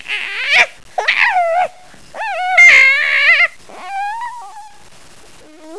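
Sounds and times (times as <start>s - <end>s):
puppies whimpering and whining: 0.3s - 4.7s.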